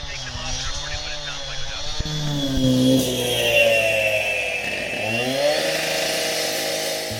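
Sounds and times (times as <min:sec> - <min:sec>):
people talking: 0:00.0 - 0:02.2
saw cutting through concrete muffled through hearing protection: 0:02.0 - 0:07.1.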